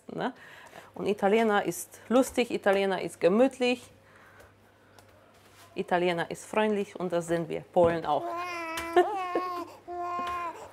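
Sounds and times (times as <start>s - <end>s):
speech: 0.2s - 4.0s, 5.8s - 9.2s
hungry four-month-old baby boy crying: 8.3s - 10.7s.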